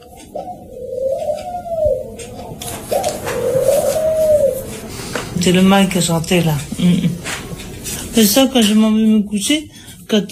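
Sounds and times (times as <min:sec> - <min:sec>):
dove cooing: 0:00.0 - 0:05.7
speech: 0:00.3 - 0:00.9, 0:05.4 - 0:07.3, 0:08.2 - 0:10.2
faint hiss of outdoor background: 0:00.3 - 0:10.2.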